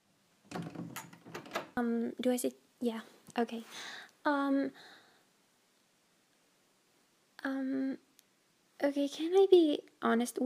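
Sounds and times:
soft knocks: 0.5s - 1.7s
door being pushed shut: 0.5s - 1.8s
latch-like click: 0.5s - 1.8s
speech: 1.8s - 5.0s, 7.4s - 8.1s, 8.8s - 10.4s.

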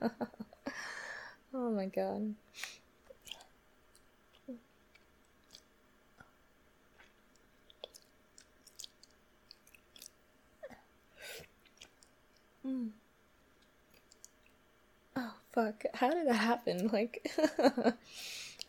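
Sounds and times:
speech: 0.0s - 0.4s, 1.7s - 2.8s, 15.6s - 18.4s
wet mouth sounds with lip smacks, tongue clicks and saliva noises: 2.6s - 10.8s, 11.4s - 12.5s, 13.6s - 14.6s.

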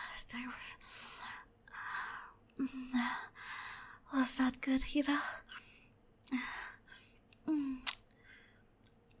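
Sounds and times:
speech: 0.3s - 1.1s, 2.6s - 3.3s, 4.1s - 5.5s, 6.3s - 6.6s
soft wet kissing smacks: 7.8s - 8.0s.

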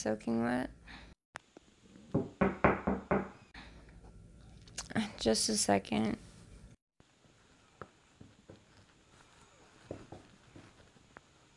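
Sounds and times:
speech: 0.0s - 1.0s, 4.9s - 6.2s
knocking on a door: 2.1s - 3.4s.

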